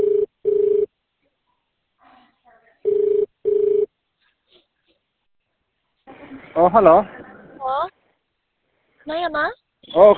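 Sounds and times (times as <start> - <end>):
messaging app voice call ringtone as paired electronic tones: 0.0 - 0.9, 2.9 - 3.9
speech: 6.6 - 7.2, 9.1 - 10.1.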